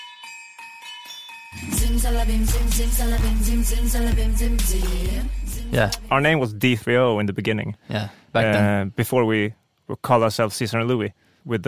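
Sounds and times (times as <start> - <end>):
ringing bells playing a repeating melodic figure in a song intro: 0.0 - 6.4
speech: 1.5 - 11.6
deep sustained bass: 1.6 - 6.4
steady beat: 1.6 - 6.6.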